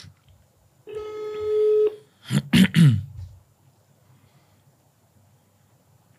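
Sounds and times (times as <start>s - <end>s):
phone ringback tone: 0.9s - 2.0s.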